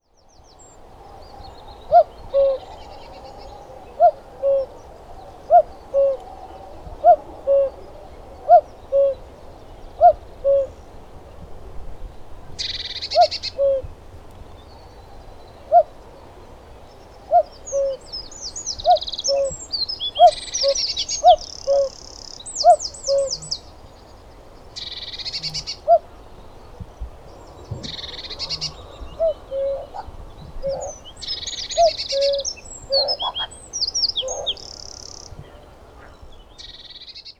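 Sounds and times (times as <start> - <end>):
Common Cuckoo Cuculus canorus calling: 1.1 - 4.7, 5.5 - 9.2, 10.0 - 10.8, 12.6 - 13.9, 17.2 - 23.7, 27.3 - 37.2.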